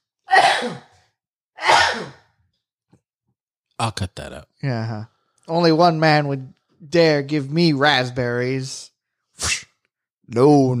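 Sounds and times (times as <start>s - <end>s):
person sneezing: 0.3s - 1.0s, 1.6s - 2.2s
speech: 0.6s - 0.9s, 3.8s - 9.6s, 10.3s - 10.7s.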